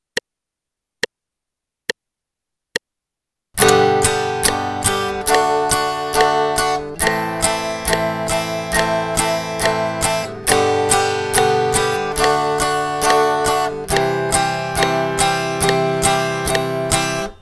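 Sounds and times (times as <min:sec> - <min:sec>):
guitar strumming in eighth notes: 0:03.6 - 0:17.4.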